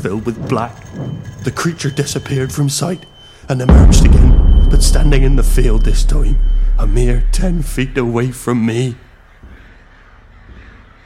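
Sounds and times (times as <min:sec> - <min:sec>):
speech: 0:00.0 - 0:09.0
crows cawing: 0:09.3 - 0:11.0.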